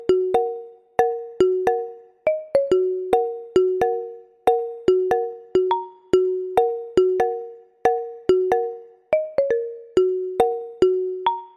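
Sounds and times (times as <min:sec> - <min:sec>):
original iPhone marimba ringtone: 0:00.0 - 0:11.5.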